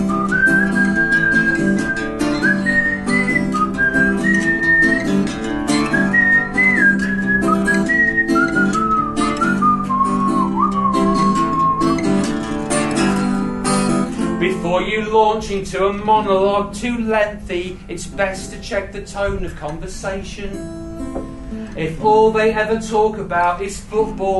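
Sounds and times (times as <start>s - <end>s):
person whistling a tune: 0.0s - 12.3s
instrumental accompaniment: 0.0s - 14.7s, 20.4s - 21.9s
speech: 15.1s - 20.8s, 21.8s - 24.3s.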